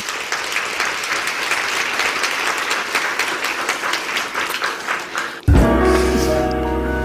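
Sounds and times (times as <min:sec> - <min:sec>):
crowd applauding: 0:00.0 - 0:06.4
loud music: 0:05.5 - 0:07.0.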